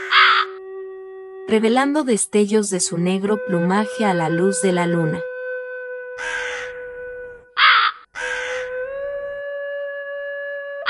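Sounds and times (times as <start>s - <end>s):
crow cawing on a tree branch at night: 0.0s - 0.6s, 6.2s - 6.8s, 7.6s - 8.8s
speech: 1.5s - 5.3s.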